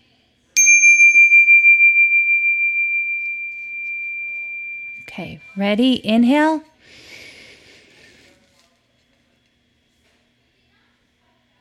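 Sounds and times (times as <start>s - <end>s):
single bright bell chime marking start of a breathing exercise: 0.6s - 5.6s
speech: 5.2s - 7.0s.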